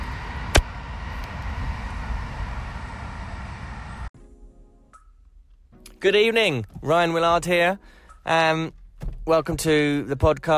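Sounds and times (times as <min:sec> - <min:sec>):
train rolling past in the distance: 0:00.0 - 0:04.1
speech: 0:06.0 - 0:10.5.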